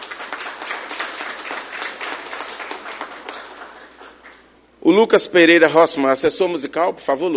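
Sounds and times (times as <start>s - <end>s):
audience applause: 0.0s - 4.4s
speech: 4.8s - 7.3s.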